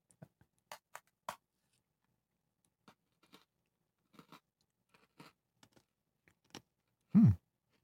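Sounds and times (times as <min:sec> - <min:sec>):
biting into and chewing a crisp mint-flavored Oreo cookie: 0:02.8 - 0:06.9
person humming: 0:07.2 - 0:07.4.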